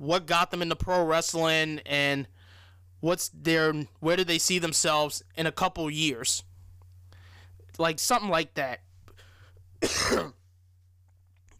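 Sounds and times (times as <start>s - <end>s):
speech: 0.0s - 2.4s, 3.0s - 6.5s, 7.8s - 8.9s, 9.8s - 10.4s
low steady hum: 0.0s - 11.5s
single short harsh cough: 9.8s - 10.4s.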